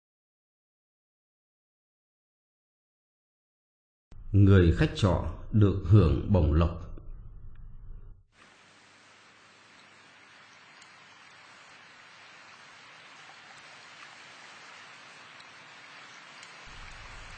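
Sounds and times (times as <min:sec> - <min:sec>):
low hum: 0:04.1 - 0:08.2
speech: 0:04.3 - 0:06.9
heavy rain on a gloomy October day: 0:08.4 - 0:17.3.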